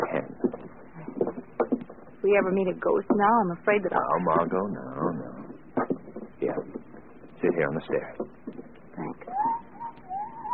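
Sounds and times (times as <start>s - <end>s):
faint hush: 0.0s - 10.5s
speech: 2.3s - 5.2s, 7.4s - 8.2s
owl hooting outside the house: 9.2s - 10.5s.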